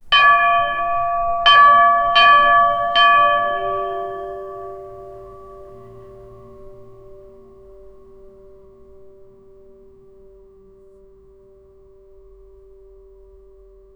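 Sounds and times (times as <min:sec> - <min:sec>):
bassy church bell playing in A: 0:00.0 - 0:10.0.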